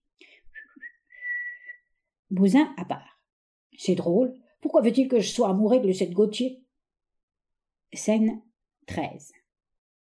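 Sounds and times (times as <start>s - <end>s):
person whistling a short casual phrase: 0.5s - 1.9s
speech: 2.3s - 3.1s, 3.8s - 6.6s, 7.9s - 9.4s.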